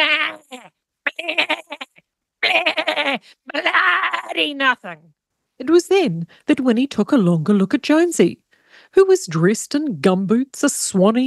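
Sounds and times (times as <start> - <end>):
sheep bleating: 2.4 - 4.5
speech: 3.1 - 11.2.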